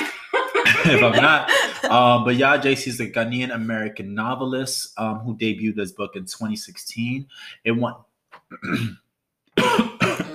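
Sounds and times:
laughter: 0.0s - 2.8s
speech: 0.8s - 9.0s
coughing fit set off by pepper: 8.4s - 9.0s, 9.6s - 10.3s
throat clearing: 8.5s - 9.0s, 9.6s - 10.3s.

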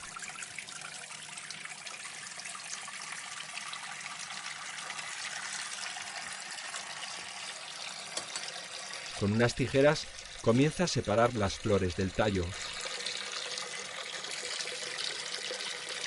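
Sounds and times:
water running from a tap into a filling kitchen sink: 6.6s - 9.4s
speech: 9.2s - 12.8s.

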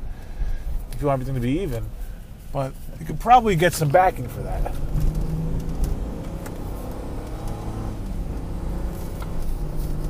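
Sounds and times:
speech: 1.0s - 4.9s
high-pitched car engine revving with a whining edge: 3.4s - 10.0s.

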